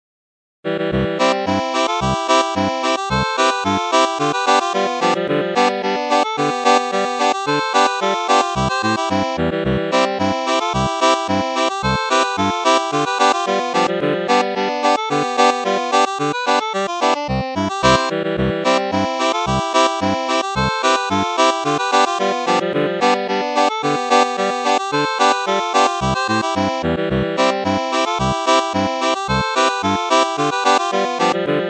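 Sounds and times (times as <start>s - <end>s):
two harmonikas playing a Boarischer folk dance: 1.0s - 31.6s.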